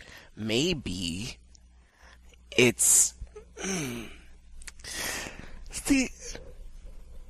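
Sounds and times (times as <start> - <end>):
speech: 0.4 - 1.4, 2.6 - 4.2, 4.8 - 6.5
person yawning with a voiced groan: 3.4 - 4.3.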